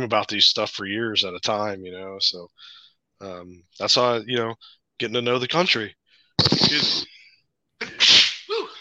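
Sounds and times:
speech: 0.0 - 7.2
loud explosive sneezing: 6.4 - 7.1, 7.8 - 8.7.

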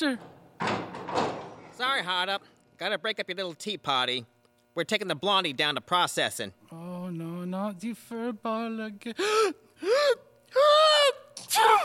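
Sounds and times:
speech: 0.0 - 0.3, 1.8 - 10.7
person sneezing: 11.4 - 11.8.

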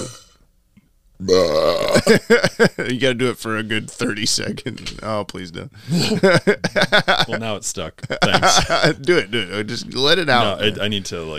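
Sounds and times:
loud guttural burp: 0.0 - 0.4, 1.2 - 2.2
speech: 1.2 - 11.3
laughter: 5.9 - 9.7.

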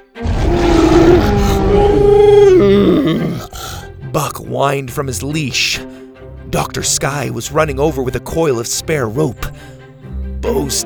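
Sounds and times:
deep sustained dinosaur roar: 0.2 - 3.8
speech: 4.2 - 5.9, 6.5 - 9.8, 10.4 - 10.8.

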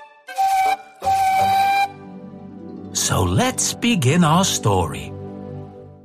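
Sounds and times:
steam engine whistle blowing: 0.0 - 2.1
speech: 3.1 - 5.2.

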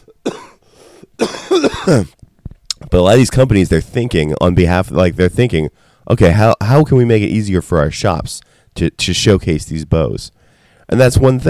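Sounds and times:
person coughing close to the microphone: 0.0 - 2.2
speech: 1.2 - 2.2, 2.9 - 11.4.

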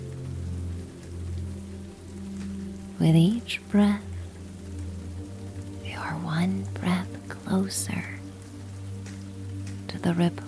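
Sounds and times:
low humming drone: 0.0 - 10.4
soft rain hissing: 0.0 - 10.4
speech: 3.0 - 4.1, 7.6 - 8.2, 10.0 - 10.4.

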